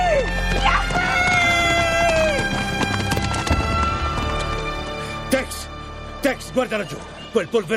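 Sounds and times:
galloping horse hoofbeats: 0.0 - 4.8
dramatic music: 0.0 - 7.7
speech: 6.6 - 7.7.

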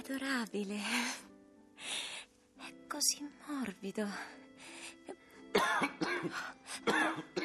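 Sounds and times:
speech: 0.1 - 1.3, 3.0 - 4.4, 5.6 - 7.4
person coughing: 5.6 - 7.4.

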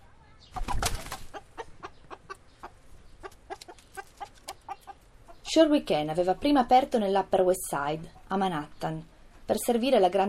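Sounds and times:
chicken clucking: 0.0 - 5.6
speech: 5.5 - 10.2.

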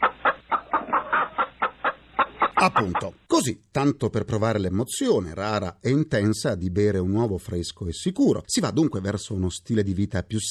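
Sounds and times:
chicken clucking: 0.0 - 3.3
speech: 2.6 - 10.4.

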